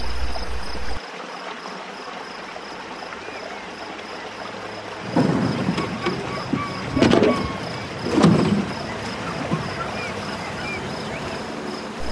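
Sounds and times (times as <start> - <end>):
night marsh water noise: 0.0 - 12.0
thin constant insect drone in a night marsh: 0.0 - 12.0
louder rushing swells: 5.0 - 12.0.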